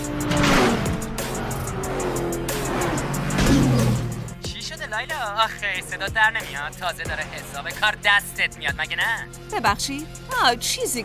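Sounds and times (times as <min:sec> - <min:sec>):
racing car engine roaring during a race: 0:00.0 - 0:04.4
speech: 0:05.0 - 0:11.0.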